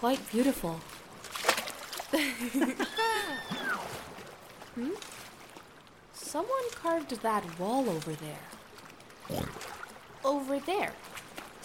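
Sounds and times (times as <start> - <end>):
speech: 0.0 - 1.0, 2.1 - 3.8, 4.8 - 5.2, 6.3 - 8.6, 10.2 - 11.1
people swimming and splashing in an underground lake: 1.2 - 5.7, 6.4 - 10.1.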